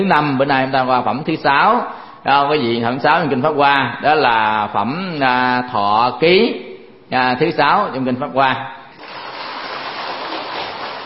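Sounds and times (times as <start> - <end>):
speech: 0.0 - 8.8
fine early-morning drizzle falling: 9.0 - 11.0.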